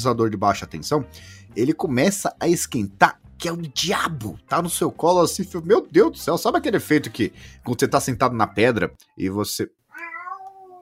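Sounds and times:
speech: 0.0 - 9.8
female cat meowing drawn-out: 9.9 - 10.7.

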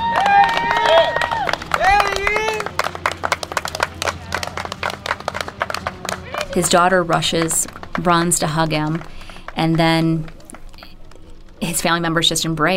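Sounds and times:
excited voices calling out: 0.0 - 4.6
crowd applause: 0.0 - 11.8
speech: 6.6 - 10.4, 11.7 - 12.7.

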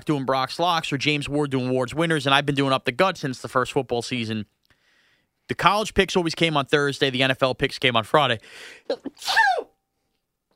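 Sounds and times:
speech: 0.0 - 4.6, 5.5 - 9.7
person sneezing: 8.8 - 9.7.

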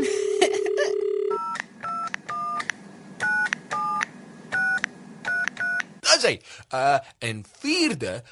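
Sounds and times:
low hum: 0.0 - 8.2
telephone dial tone: 0.2 - 1.5
telephone keypad dual-tone presses: 0.5 - 5.9
speech: 6.3 - 8.2.

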